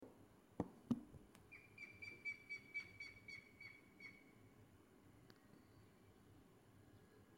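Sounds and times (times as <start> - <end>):
Grey-headed woodpecker whistled calls: 1.5 - 4.3.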